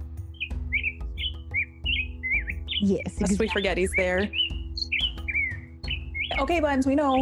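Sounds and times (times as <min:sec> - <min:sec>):
robin chirping indoors: 0:00.0 - 0:07.1
speech: 0:02.8 - 0:04.6, 0:06.4 - 0:07.1.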